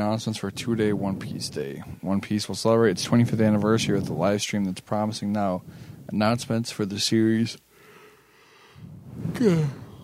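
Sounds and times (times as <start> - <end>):
speech: 0.0 - 7.7, 9.2 - 9.8
person yawning: 9.2 - 10.0.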